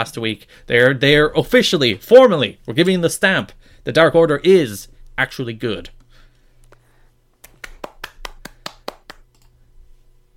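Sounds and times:
speech: 0.0 - 6.0
hand claps from a single person: 7.4 - 9.4.

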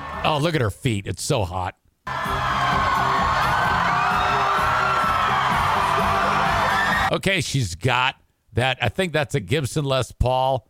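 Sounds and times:
concert crowd cheering and whooping: 0.0 - 0.3, 2.1 - 7.1
speech: 0.2 - 2.3, 7.1 - 10.6
woman screaming excitedly at concert: 2.1 - 7.1.

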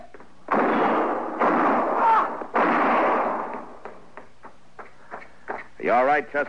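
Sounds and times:
sharp gunshots in a shootout: 0.5 - 3.9
speech: 6.1 - 6.4.

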